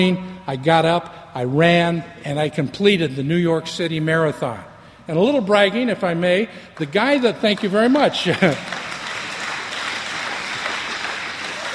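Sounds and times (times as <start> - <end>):
speech: 0.0 - 8.8
crowd applauding with dense rapid clapping: 6.8 - 11.7.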